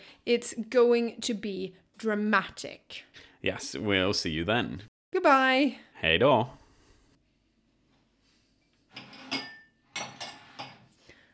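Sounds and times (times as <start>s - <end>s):
speech: 0.2s - 6.6s
glassware and dishes clinking as a glass is fetched: 8.9s - 10.9s.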